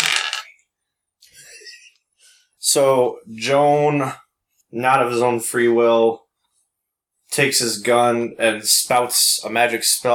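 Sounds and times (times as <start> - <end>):
dice clattering across a hard tabletop: 0.0 - 0.6
speech: 2.6 - 6.2, 7.4 - 10.1.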